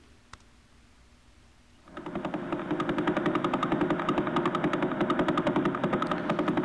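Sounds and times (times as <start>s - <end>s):
rapid train of clicks from the Vela pulsar spinning 11 times per second: 1.9s - 6.6s.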